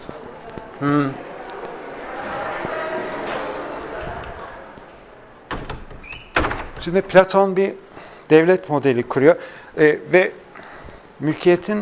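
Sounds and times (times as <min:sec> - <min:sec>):
crowd activity from an event outside: 0:00.0 - 0:11.8
speech: 0:00.8 - 0:01.3, 0:06.8 - 0:10.4, 0:11.2 - 0:11.8
door being pushed shut: 0:05.4 - 0:07.2.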